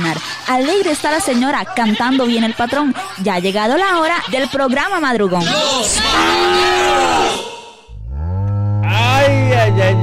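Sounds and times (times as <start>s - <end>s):
laughter: 0.0s - 7.0s
speech: 0.5s - 7.4s, 9.3s - 10.0s
cow mooing: 6.0s - 10.0s.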